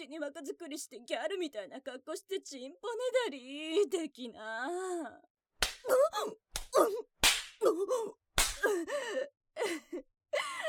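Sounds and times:
speech: 0:00.0 - 0:10.6
slaps to the face: 0:05.6 - 0:06.0, 0:06.6 - 0:07.6, 0:08.4 - 0:08.7
woman's breathy cries and moaning: 0:05.9 - 0:10.6.

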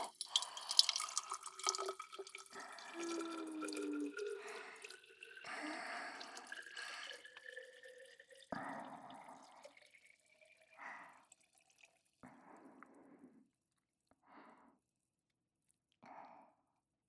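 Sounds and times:
carbonated water poured into a glass holding ice: 0:00.0 - 0:12.2.

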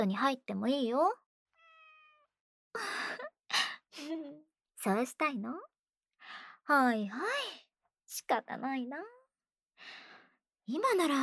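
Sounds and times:
speech: 0:00.0 - 0:01.2, 0:02.8 - 0:03.2, 0:04.0 - 0:09.2, 0:10.7 - 0:11.2
cat meowing: 0:01.6 - 0:02.3.

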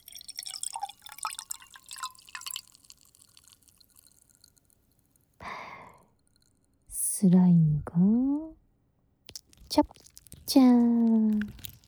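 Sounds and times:
carbonated drink fizzing with tiny popping bubbles: 0:00.0 - 0:06.5
speech: 0:07.2 - 0:08.5, 0:09.8 - 0:11.6.

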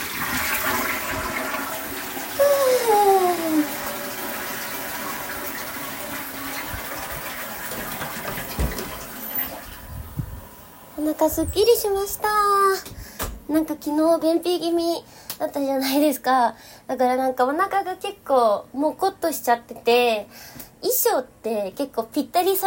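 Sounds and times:
toilet flushing: 0:00.0 - 0:11.0
speech: 0:11.2 - 0:12.9, 0:13.5 - 0:22.6.

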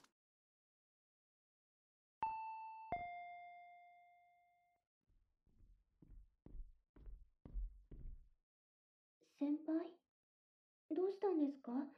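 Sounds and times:
intercom doorbell two-tone ding-dong: 0:02.3 - 0:04.7
speech: 0:09.4 - 0:10.0, 0:10.9 - 0:11.9.

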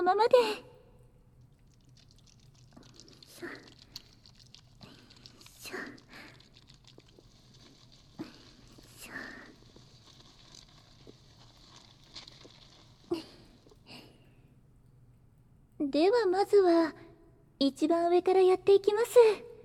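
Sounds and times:
speech: 0:00.0 - 0:00.7, 0:15.8 - 0:17.0, 0:17.6 - 0:19.5
faint steady hum: 0:00.0 - 0:19.6
hands working shampoo into a lather: 0:01.5 - 0:13.8.

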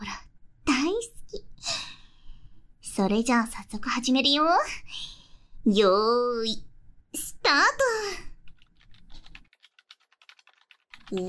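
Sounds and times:
speech: 0:03.0 - 0:08.3, 0:11.1 - 0:11.2
fast typing on a computer keyboard: 0:08.4 - 0:11.2.

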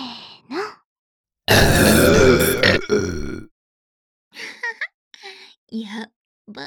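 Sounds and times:
eight people belching together: 0:01.5 - 0:03.5
softer brief throaty sounds: 0:01.5 - 0:03.5.

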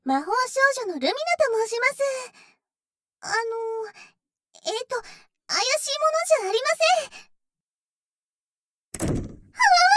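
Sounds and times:
speech: 0:00.1 - 0:02.5, 0:03.2 - 0:07.3
door shutting with a thud: 0:08.9 - 0:09.6.

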